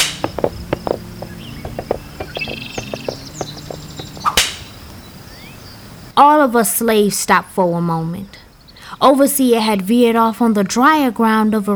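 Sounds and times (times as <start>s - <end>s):
faint birdsong: 0.0s - 6.2s, 8.3s - 9.9s
insects chirping: 0.0s - 6.2s, 8.5s - 9.0s
black snake whip cracking wielded by an overseer riding a horse: 4.3s - 4.7s
speech: 6.4s - 8.4s, 9.0s - 11.7s.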